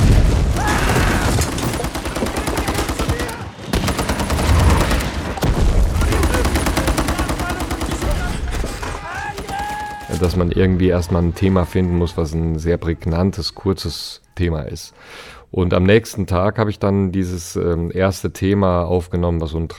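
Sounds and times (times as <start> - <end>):
deep rumbling explosions in a film battle scene: 0.0 - 2.4, 3.6 - 6.9
rapid-fire machine guns in a film battle scene: 0.0 - 10.1
speech: 10.2 - 19.7.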